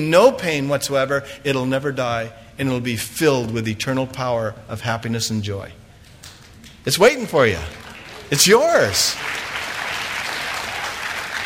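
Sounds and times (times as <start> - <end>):
speech: 0.0 - 5.8, 6.8 - 9.5
audience applause: 7.6 - 11.4.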